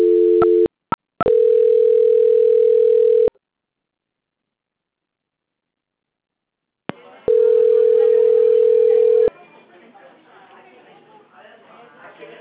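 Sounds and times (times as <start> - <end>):
long steady mid-pitched telephone tones during a call transfer: 0.0 - 3.3, 7.3 - 9.3
faint noise: 1.3 - 12.4.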